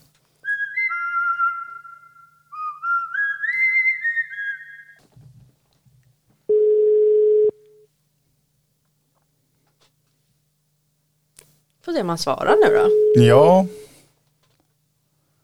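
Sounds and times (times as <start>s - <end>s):
whistle-like melodic tones: 0.4s - 5.0s
telephone busy signal while placing a call: 6.5s - 7.6s, 12.4s - 13.8s
speech: 11.9s - 13.8s.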